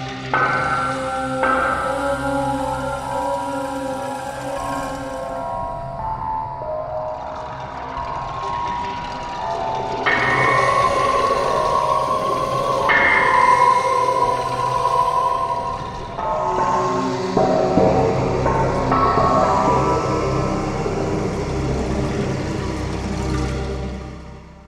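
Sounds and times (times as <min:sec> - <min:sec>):
synthesizer factory preset sound: 0:00.4 - 0:24.6.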